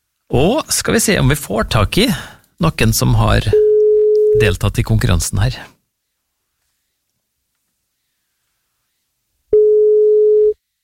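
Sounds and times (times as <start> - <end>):
speech: 0.3 - 3.6, 4.4 - 5.8
telephone ringback tone while dialing: 3.6 - 4.4, 9.5 - 10.6.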